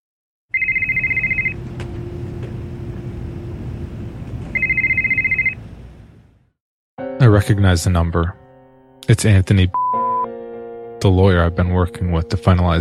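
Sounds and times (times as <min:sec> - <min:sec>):
telephone ringing with trilling bursts: 0:00.5 - 0:01.6, 0:04.5 - 0:05.7
speech: 0:07.2 - 0:08.4, 0:09.1 - 0:09.8, 0:11.0 - 0:12.7.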